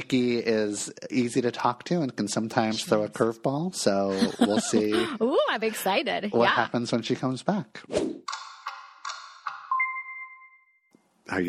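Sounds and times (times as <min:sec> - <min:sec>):
speech: 0:00.1 - 0:08.2, 0:11.3 - 0:11.4
laughter: 0:04.0 - 0:05.5
mobile phone electronic jingle: 0:09.7 - 0:10.9.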